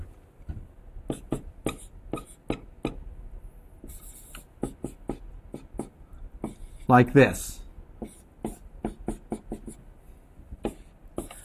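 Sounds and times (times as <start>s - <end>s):
writing on a board during a lecture: 1.0s - 3.0s, 3.8s - 6.9s, 8.0s - 9.8s, 10.6s - 11.4s
speech: 6.9s - 7.6s.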